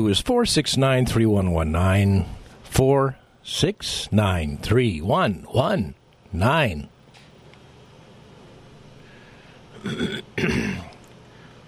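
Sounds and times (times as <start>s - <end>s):
speech: 0.0s - 6.9s, 9.8s - 10.9s
man clearing his throat: 9.8s - 11.0s.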